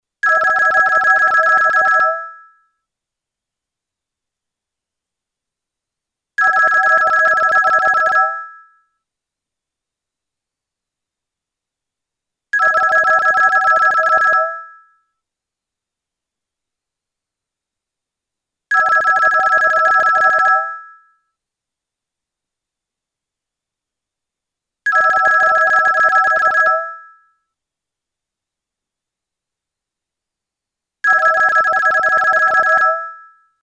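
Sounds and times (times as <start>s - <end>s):
old Swedish phone: 0.2s - 2.7s, 6.4s - 8.9s, 12.6s - 15.0s, 18.7s - 21.1s, 24.9s - 27.4s, 31.0s - 33.6s.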